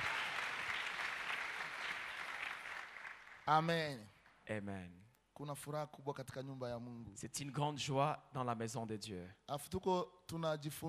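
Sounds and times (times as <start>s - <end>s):
church congregation clapping during a service: 0.0s - 4.4s
speech: 3.5s - 10.8s.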